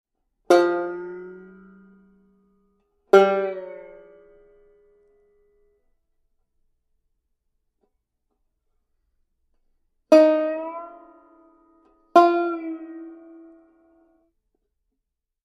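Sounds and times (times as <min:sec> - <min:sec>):
banjo string bending: 0:00.5 - 0:05.8, 0:09.5 - 0:14.2.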